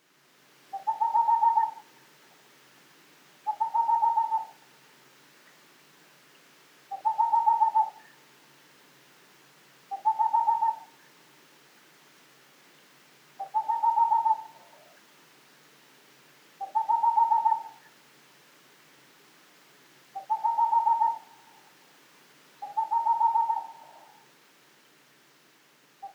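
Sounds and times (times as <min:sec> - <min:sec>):
Boreal Owl giving fast mellow hoots: 0:00.7 - 0:02.0, 0:03.4 - 0:04.6, 0:06.9 - 0:08.2, 0:09.9 - 0:11.1, 0:13.4 - 0:15.0, 0:16.6 - 0:18.0, 0:20.1 - 0:21.8, 0:22.6 - 0:24.3.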